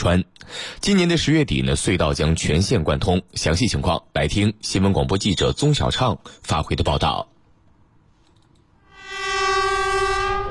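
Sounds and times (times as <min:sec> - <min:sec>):
speech: 0:00.0 - 0:07.4
high-speed multiple-unit train horn echoing through a mountain valley: 0:08.8 - 0:10.5.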